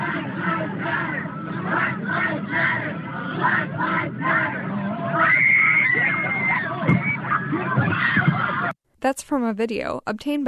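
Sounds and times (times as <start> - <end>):
frantic shouting: 0.0 - 8.8
large crowd of marching students chanting: 0.0 - 8.8
speech: 9.1 - 10.4.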